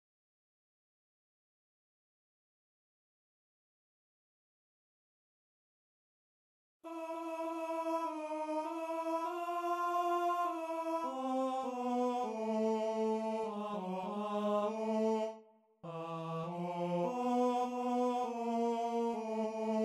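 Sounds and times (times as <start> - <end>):
tenor singing: 6.9 - 19.8.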